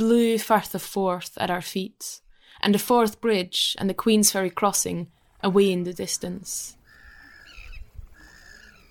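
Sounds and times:
speech: 0.0s - 6.8s
seagulls screeching: 6.8s - 8.8s.

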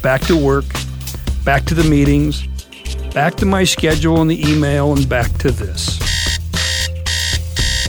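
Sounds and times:
speech: 0.0s - 0.8s, 1.4s - 2.5s, 3.1s - 6.1s
alarm clock ringing in shrill bursts: 6.1s - 7.8s.

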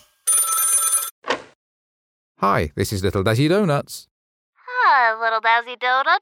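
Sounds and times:
telephone bell ringing: 0.2s - 1.2s
speech: 2.4s - 4.1s, 4.8s - 6.2s.

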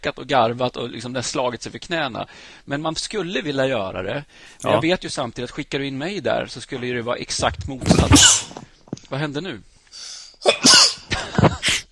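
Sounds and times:
speech: 0.0s - 10.8s
person sneezing: 7.8s - 8.6s, 10.4s - 11.9s.

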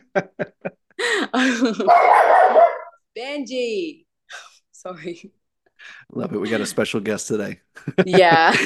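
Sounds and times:
laughter: 0.0s - 2.0s, 7.8s - 8.6s
speech: 0.2s - 0.5s, 1.4s - 2.6s, 3.2s - 8.6s
dog barking: 1.8s - 3.0s.

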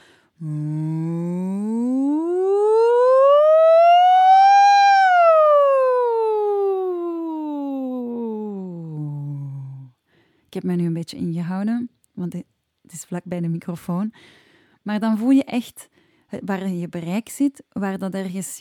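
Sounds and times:
speech: 0.4s - 0.7s, 11.1s - 18.5s
voice imitating a fire engine siren as a singing exercise: 0.4s - 9.3s.

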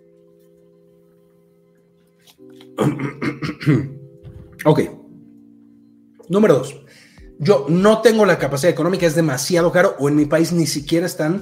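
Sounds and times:
speech: 2.3s - 4.0s, 4.6s - 5.0s, 6.3s - 11.4s
rough throaty coughs: 2.8s - 4.6s.

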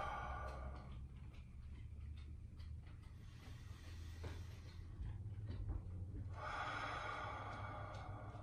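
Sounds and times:
deep inhale and exhale through the mouth: 0.0s - 1.1s, 3.2s - 5.0s, 6.3s - 8.4s
quiet low hum: 0.0s - 8.4s.

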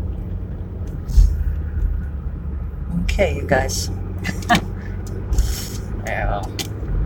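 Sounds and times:
low traffic rumble from cars: 0.0s - 7.0s
speech: 3.2s - 4.6s.

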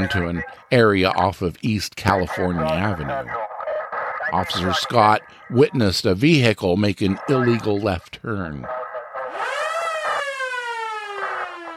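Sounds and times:
police car siren wailing: 0.0s - 0.6s, 2.2s - 5.9s, 7.1s - 7.8s, 8.6s - 11.7s
speech: 0.0s - 3.5s, 4.3s - 8.8s.

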